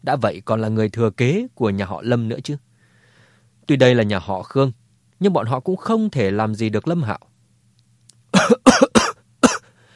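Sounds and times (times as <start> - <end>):
speech: 0.0 - 2.7, 3.7 - 7.3
man having a violent dry coughing fit: 8.3 - 9.8.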